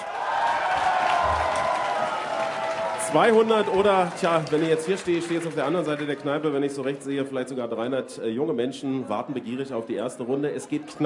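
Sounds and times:
pub audience applauding: 0.0 - 7.3
pub audience cheering: 0.0 - 7.4
speech: 3.1 - 11.0.

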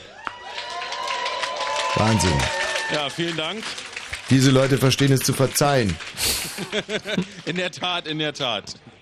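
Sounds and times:
crowd cheering and whooping: 0.0 - 3.2
crowd applause: 0.1 - 7.7
speech: 2.0 - 8.9
laughter: 6.2 - 7.8.

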